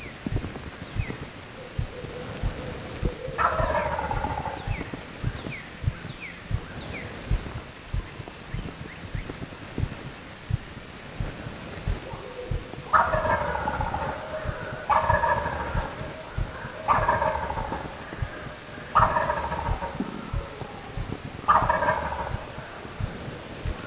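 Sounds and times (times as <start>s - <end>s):
low outdoor rumble: 0.0s - 23.8s
wild turkey gobbling: 1.6s - 6.3s, 12.0s - 22.8s.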